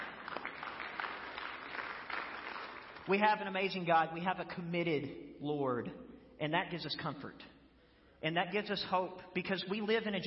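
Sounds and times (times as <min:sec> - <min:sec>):
crowd of people clapping: 0:00.0 - 0:03.5
speech: 0:03.1 - 0:07.5, 0:08.2 - 0:10.2.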